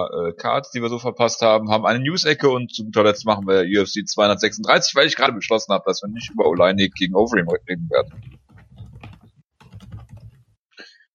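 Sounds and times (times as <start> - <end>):
speech: 0.0 - 8.3
fingers typing on a computer keyboard: 8.0 - 10.4.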